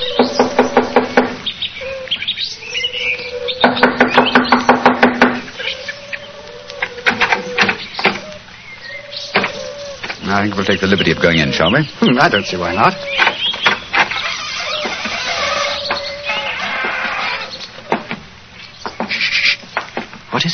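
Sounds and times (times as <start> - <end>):
faint chirping: 0.0 - 20.5
low steady hum: 0.0 - 20.5
speech: 0.2 - 0.4, 10.4 - 13.3
knocking on a door: 0.2 - 1.4, 3.6 - 5.5.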